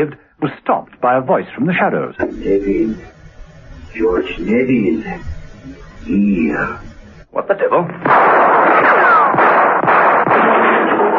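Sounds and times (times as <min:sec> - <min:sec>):
speech: 0:00.0 - 0:03.2, 0:03.9 - 0:09.6
loud dense roar of noise: 0:02.2 - 0:07.3
sharp cracks: 0:07.9 - 0:11.1
gunshot fired at dawn in a mews: 0:08.0 - 0:11.1.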